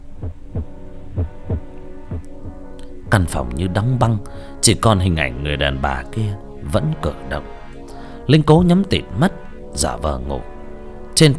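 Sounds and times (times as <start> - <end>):
heartbeat sound effect: 0.0 - 2.7
speech: 3.1 - 7.6, 8.3 - 10.5, 11.2 - 11.3.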